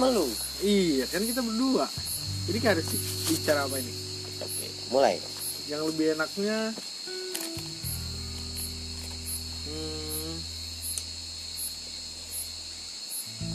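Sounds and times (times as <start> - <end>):
speech: 0.0 - 6.9
cicadas buzzing: 0.0 - 13.5
faint rhythmic pulses: 0.0 - 13.5
brief murmured voice: 9.7 - 10.5.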